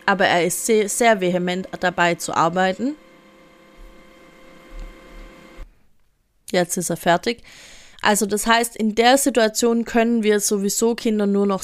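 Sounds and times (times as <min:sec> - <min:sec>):
printer running with mechanical hum and whirring: 0:00.0 - 0:05.7
speech: 0:00.1 - 0:03.1, 0:06.5 - 0:11.6.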